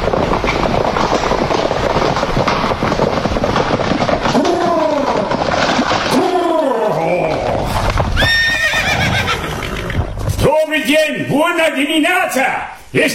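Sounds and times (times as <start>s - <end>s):
horse-drawn carriage wheels rumbling: 0.0s - 10.4s
clatter of horse hooves: 0.0s - 11.3s
horses neighing and whinnying: 4.0s - 10.4s
speech: 11.9s - 13.1s.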